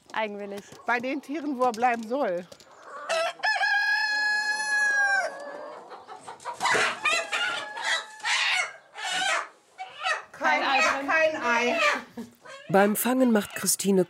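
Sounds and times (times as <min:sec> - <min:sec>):
speech: 0:00.2 - 0:02.6, 0:12.7 - 0:14.0
chickens of a robust hybrid laying breed clucking and squawking: 0:02.6 - 0:13.7
rooster crowing on a farm: 0:03.0 - 0:05.8, 0:06.6 - 0:09.5.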